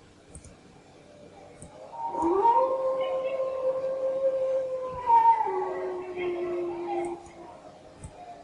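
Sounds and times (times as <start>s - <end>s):
person imitating a deep-throated feral howl of a female creature: 1.8s - 7.5s.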